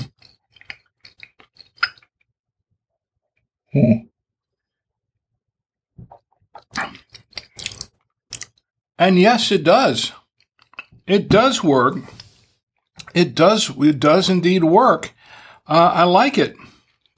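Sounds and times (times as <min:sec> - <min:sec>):
chewing firm Gouda cheese with moist mouth clicks and smacks: 0:00.0 - 0:02.1, 0:06.1 - 0:08.6, 0:10.1 - 0:11.0, 0:16.7 - 0:17.1
speech: 0:03.7 - 0:04.0, 0:09.0 - 0:10.2, 0:11.1 - 0:12.2, 0:13.2 - 0:16.7.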